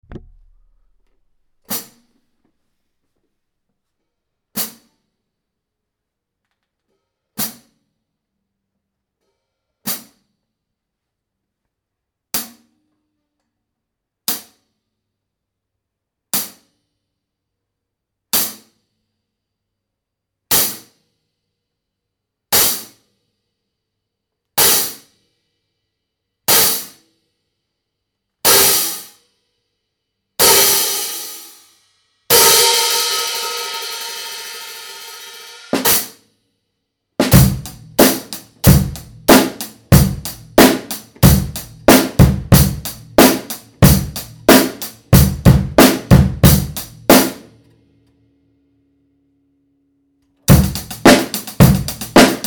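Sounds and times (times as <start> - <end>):
extra heavy 15-inch hi-hat cymbal: 22.5 - 23.6, 24.6 - 27.5, 28.5 - 29.6, 30.4 - 36.2, 37.2 - 47.5, 50.5 - 52.4.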